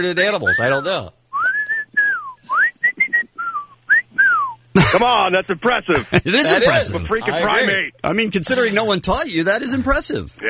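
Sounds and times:
speech: 0:00.0 - 0:01.2, 0:04.8 - 0:10.4
faint hum: 0:00.0 - 0:10.4
person whistling a quick wandering tune: 0:01.4 - 0:04.6
laughter: 0:04.8 - 0:07.9.

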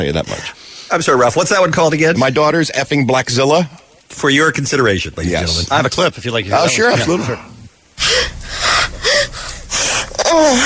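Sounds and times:
speech: 0:00.0 - 0:07.6, 0:10.3 - 0:10.6
woman gasping and catching her breath: 0:08.0 - 0:10.6
woman whimpering: 0:08.0 - 0:10.6.

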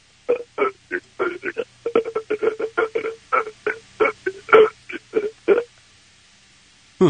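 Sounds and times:
person burping over a phone line: 0:00.3 - 0:05.7.

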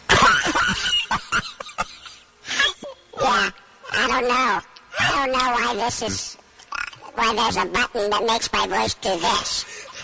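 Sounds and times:
person coughing: 0:00.1 - 0:01.9
speech: 0:04.2 - 0:06.3, 0:07.2 - 0:09.7.

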